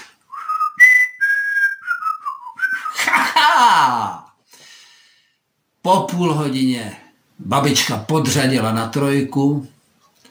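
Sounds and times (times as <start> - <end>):
grandmother whistling a tune while driving a car: 0.3 - 3.2
speech: 5.8 - 9.7.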